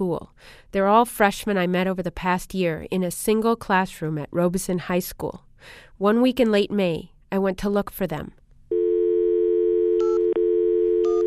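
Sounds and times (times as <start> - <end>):
speech: 0.0 - 8.4
telephone tone for a disconnected number over a phone line: 8.7 - 11.2.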